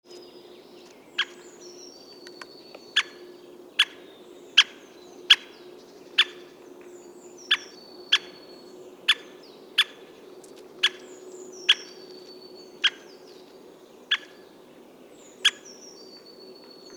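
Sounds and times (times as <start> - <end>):
white-backed woodpecker: 0.8 - 1.4, 2.1 - 5.6, 6.2 - 6.6, 9.1 - 10.1, 10.8 - 12.1, 12.8 - 13.1, 14.1 - 14.4, 15.4 - 16.3.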